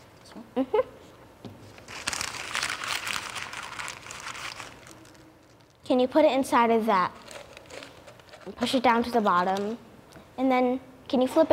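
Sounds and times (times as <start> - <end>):
speech: 0.6 - 0.8, 5.9 - 7.2, 8.5 - 11.5
paper being crumpled up: 1.7 - 5.8, 7.2 - 8.6.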